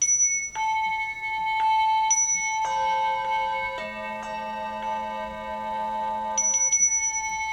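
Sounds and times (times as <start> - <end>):
small chime bells struck like a sound board: 0.0 - 7.5.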